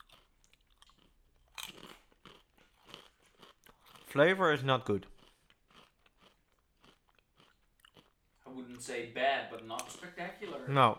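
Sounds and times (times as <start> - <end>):
crunchy corn snack being bitten and chewed: 0.0 - 4.2, 5.0 - 8.9
speech: 4.1 - 5.2, 9.0 - 10.9.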